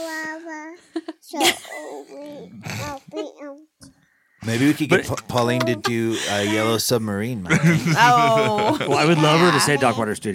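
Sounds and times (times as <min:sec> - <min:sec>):
one-year-old toddler babbling and singing: 0:00.0 - 0:00.8, 0:01.8 - 0:03.7, 0:09.1 - 0:10.1
laughter: 0:04.4 - 0:10.0
speech: 0:04.4 - 0:10.3.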